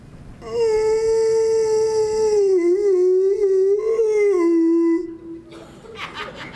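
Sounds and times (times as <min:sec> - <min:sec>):
human voice imitating a dog moaning and howling: 0:00.4 - 0:05.5
laughter: 0:05.5 - 0:06.5.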